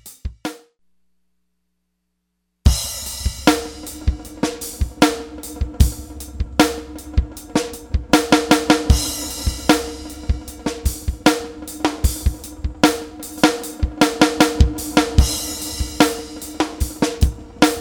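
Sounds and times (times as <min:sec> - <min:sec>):
Rhythm Stix through Roland SRV-3030 preset: 0:02.7 - 0:17.7.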